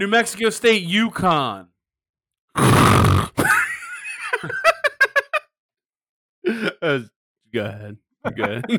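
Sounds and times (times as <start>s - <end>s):
speech: 0.0s - 1.7s, 2.6s - 3.4s, 6.5s - 8.7s
person faking a loud raspy snore: 2.6s - 3.4s
rhythmic laughter: 3.4s - 5.5s, 8.2s - 8.7s.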